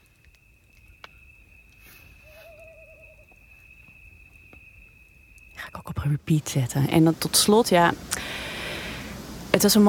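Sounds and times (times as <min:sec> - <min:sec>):
soft nighttime noise: 0:00.0 - 0:09.8
owl giving a wavering trilling hoot: 0:01.0 - 0:05.2
speech: 0:06.0 - 0:08.4, 0:09.6 - 0:09.8.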